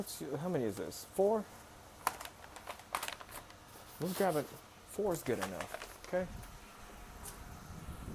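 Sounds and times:
speech: 0:00.0 - 0:01.6, 0:04.0 - 0:06.4
sharp rattling handling noises of paper bags: 0:02.0 - 0:04.3, 0:05.2 - 0:06.2
paper bags rustling and crinkling as they are counted: 0:02.0 - 0:06.3.

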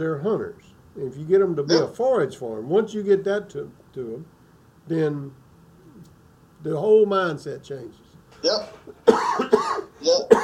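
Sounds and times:
speech: 0:00.0 - 0:05.4, 0:06.6 - 0:10.4
person coughing harshly: 0:08.4 - 0:10.4.

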